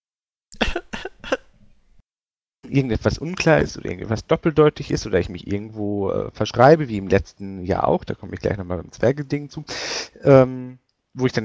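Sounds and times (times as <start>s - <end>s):
person clearing throat: 0.6s - 1.5s
speech: 2.7s - 11.4s.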